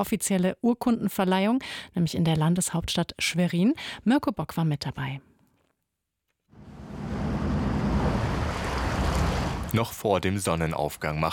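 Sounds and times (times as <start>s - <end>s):
speech: 0.0s - 5.3s, 9.7s - 11.3s
small coastal fishing boat engine running: 6.6s - 9.8s
wind: 6.6s - 9.8s
rushing water: 6.6s - 9.9s.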